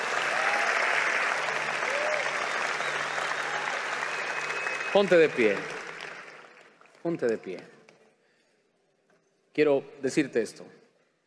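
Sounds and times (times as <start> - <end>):
audience applauding: 0.0 - 7.6
speech: 4.9 - 5.8, 7.0 - 7.8, 9.6 - 10.8.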